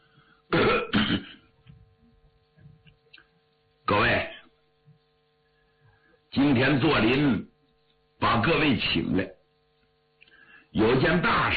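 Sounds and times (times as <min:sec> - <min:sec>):
man clearing his throat: 0:00.5 - 0:01.5
speech: 0:06.6 - 0:07.5, 0:08.2 - 0:09.4, 0:10.7 - 0:11.5.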